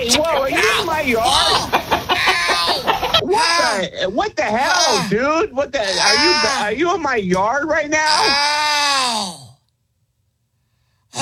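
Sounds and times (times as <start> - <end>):
speech: 0.0 - 1.4, 3.8 - 9.4
chicken clucking and squawking: 0.0 - 3.3
laughter: 0.0 - 7.0.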